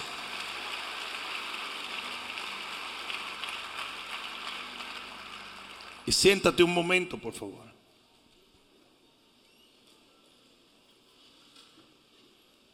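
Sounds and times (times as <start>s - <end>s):
audience applauding at a religious service: 0.0s - 6.6s
speech: 6.1s - 7.8s.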